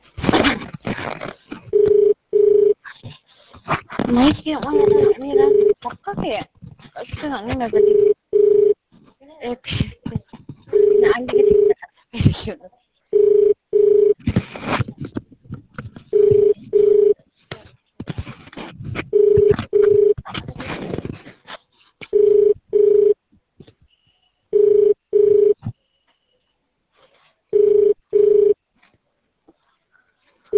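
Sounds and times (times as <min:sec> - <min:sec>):
crackling noise: 0:00.0 - 0:30.5
double-pulse ringback tone of an unanswered telephone call: 0:01.7 - 0:02.8, 0:04.8 - 0:05.8, 0:07.7 - 0:08.8, 0:10.7 - 0:11.7, 0:13.1 - 0:14.2, 0:16.1 - 0:17.2, 0:19.1 - 0:20.2, 0:22.2 - 0:23.2, 0:24.5 - 0:25.6, 0:27.5 - 0:28.6
speech: 0:04.1 - 0:08.1.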